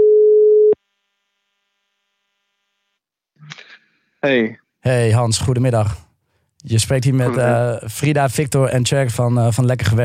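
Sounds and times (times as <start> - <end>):
telephone ringback tone while a call is being placed: 0.0 - 0.8
speech: 4.2 - 10.0.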